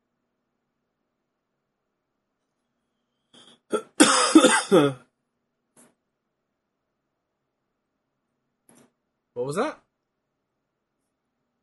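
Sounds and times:
throaty clearing sounds: 3.5 - 5.1
person coughing: 3.7 - 5.1
speech: 4.7 - 5.1, 9.4 - 9.8.

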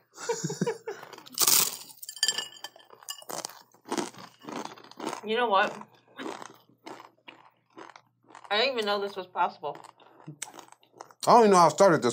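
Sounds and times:
laughter: 0.2 - 1.2
speech: 0.3 - 0.8, 5.2 - 5.9, 8.5 - 10.5, 11.2 - 12.1
sharp clinks: 1.3 - 3.6
crunchy chewing of oyster dish: 2.8 - 9.1, 9.7 - 11.3.

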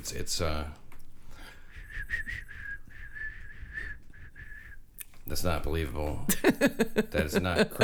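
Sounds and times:
speech: 0.0 - 0.8, 5.3 - 7.8
breath hissing around whistled notes: 1.2 - 4.8
person attempting to whistle: 1.6 - 4.9
laughter: 6.3 - 7.8.

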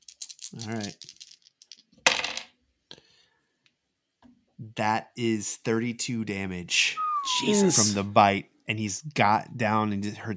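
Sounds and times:
handful of dice clattering onto a hard table in a tabletop role-playing game: 0.0 - 2.7
speech: 0.5 - 1.1, 4.8 - 10.3.

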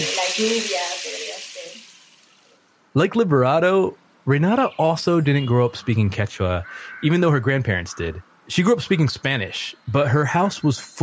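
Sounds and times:
speech: 0.0 - 1.9, 2.9 - 11.0
large rain stick pellets cascading: 0.0 - 2.6.

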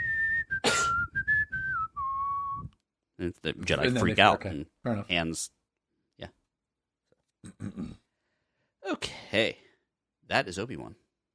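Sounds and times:
person whistling a short wavering tune: 0.0 - 2.7
speech: 3.2 - 5.6, 7.4 - 8.0, 8.9 - 9.6, 10.3 - 11.0.

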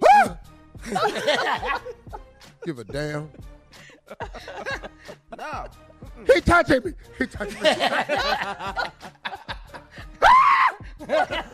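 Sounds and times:
man screaming: 0.0 - 0.4, 10.2 - 10.8
speech: 0.9 - 2.0, 2.6 - 3.5, 4.1 - 4.8, 5.4 - 9.2, 11.0 - 11.5
snickering laughter: 0.9 - 2.1, 4.0 - 5.7, 7.5 - 10.1, 11.0 - 11.5.

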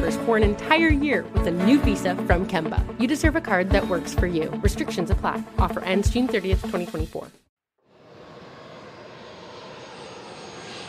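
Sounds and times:
speech: 0.1 - 7.5
private jet engine roar while landing: 7.9 - 10.8.

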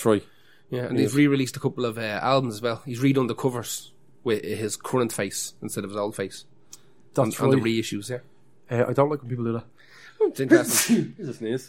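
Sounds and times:
speech: 0.0 - 6.5, 7.1 - 11.6
person sneezing: 10.5 - 11.2.

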